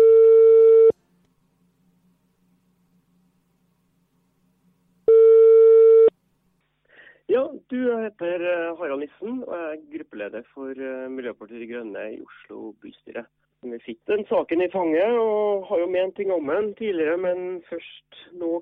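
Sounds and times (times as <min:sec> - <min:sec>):
telephone ringback tone: 0:00.0 - 0:00.9, 0:05.1 - 0:06.1
speech: 0:07.7 - 0:18.6.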